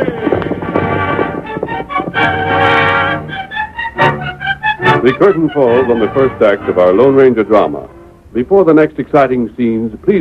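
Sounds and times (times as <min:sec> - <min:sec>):
horses galloping away: 0:00.0 - 0:03.4
orchestral music: 0:00.0 - 0:08.4
speech: 0:05.0 - 0:10.2.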